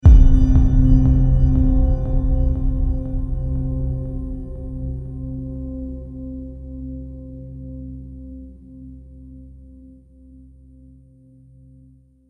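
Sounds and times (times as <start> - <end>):
trailer hit with falling echoes: 0.0 - 6.4.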